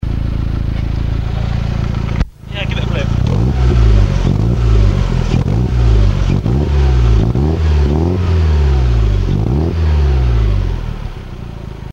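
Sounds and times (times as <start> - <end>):
engine exhaust idling and blipping: 0.0 - 11.9.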